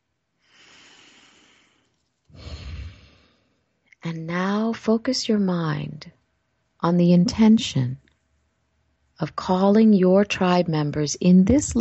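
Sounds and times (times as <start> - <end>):
deep calming breaths: 0.4 - 3.7
speech: 4.1 - 6.2, 6.8 - 8.0, 9.2 - 11.8.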